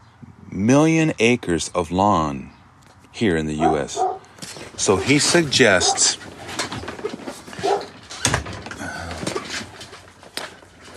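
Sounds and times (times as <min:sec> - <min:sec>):
outdoor noise: 0:00.0 - 0:10.9
speech: 0:00.6 - 0:02.6, 0:03.2 - 0:06.3
dog barking: 0:03.6 - 0:04.3, 0:05.7 - 0:06.2, 0:07.6 - 0:07.9.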